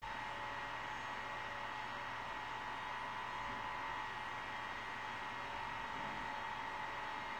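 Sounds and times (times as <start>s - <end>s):
turbine engines under load heard from interior: 0.0s - 7.3s.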